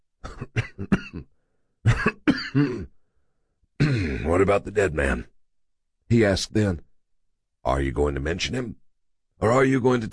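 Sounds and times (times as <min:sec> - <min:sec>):
person coughing harshly: 0:00.2 - 0:01.3, 0:01.9 - 0:02.9, 0:03.8 - 0:04.3
speech: 0:02.6 - 0:02.9, 0:04.3 - 0:05.3, 0:06.1 - 0:06.9, 0:07.6 - 0:08.8, 0:09.4 - 0:10.1.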